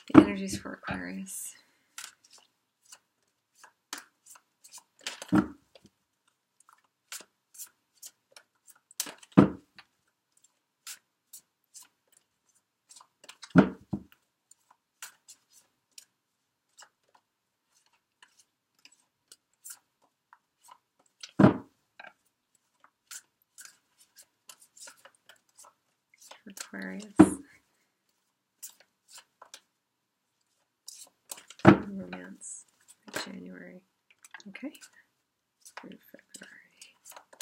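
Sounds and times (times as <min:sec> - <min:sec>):
speech: 0:00.1 - 0:01.6, 0:05.3 - 0:05.6
tarot cards being shuffled: 0:01.9 - 0:05.9, 0:06.6 - 0:16.1, 0:16.7 - 0:19.9, 0:22.0 - 0:27.4, 0:28.1 - 0:29.7, 0:30.5 - 0:33.4, 0:35.6 - 0:37.4
tarot deck tapped or cut: 0:05.0 - 0:05.6, 0:09.1 - 0:09.7, 0:13.6 - 0:14.1, 0:21.4 - 0:21.7, 0:27.1 - 0:27.4, 0:31.5 - 0:32.1.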